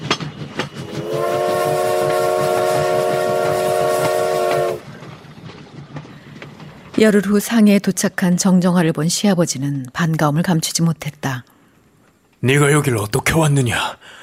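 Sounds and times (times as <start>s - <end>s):
train wheels clattering on tracks: 0.0s - 8.7s
train horn blast: 0.8s - 4.9s
speech: 7.0s - 11.5s, 12.4s - 14.2s.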